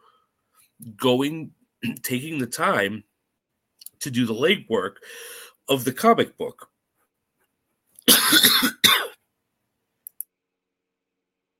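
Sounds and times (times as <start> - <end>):
speech: 0.8 - 3.1, 4.0 - 6.7
rough hacking cough: 8.1 - 9.2.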